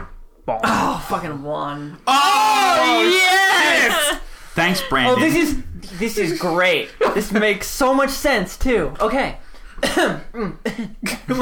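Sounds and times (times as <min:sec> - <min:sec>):
speech: 0:00.5 - 0:11.4
person clearing throat: 0:09.8 - 0:11.4.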